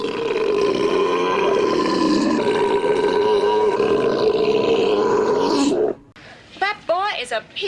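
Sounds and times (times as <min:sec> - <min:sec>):
loud rumbling belch: 0:00.0 - 0:06.0.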